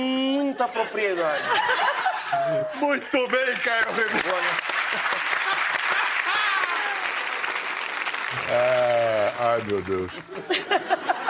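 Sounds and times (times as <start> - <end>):
speech: 0.0 - 5.2, 8.4 - 11.2
laughter: 0.5 - 7.3, 8.4 - 11.2
applause from many hands: 3.1 - 10.6.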